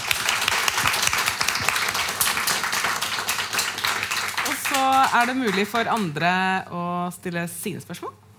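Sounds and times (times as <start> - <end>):
audience applause: 0.0 - 6.1
speech: 5.1 - 8.2.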